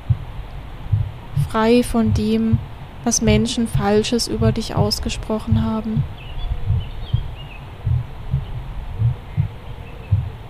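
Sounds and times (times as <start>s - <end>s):
heartbeat thumping in paired beats: 0.0s - 10.4s
speech: 1.5s - 6.3s
faint bird chirps: 6.0s - 10.4s.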